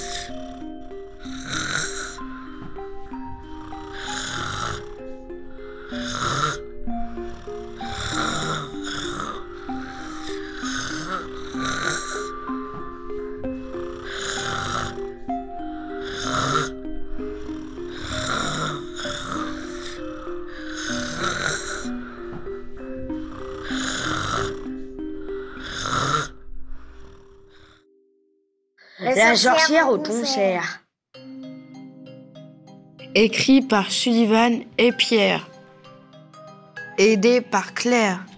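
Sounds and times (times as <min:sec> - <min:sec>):
soft sustained musical tones: 0:00.0 - 0:26.9, 0:31.2 - 0:38.3
person snoring: 0:00.0 - 0:27.9
speech: 0:29.2 - 0:30.8, 0:33.2 - 0:35.5, 0:37.0 - 0:38.3.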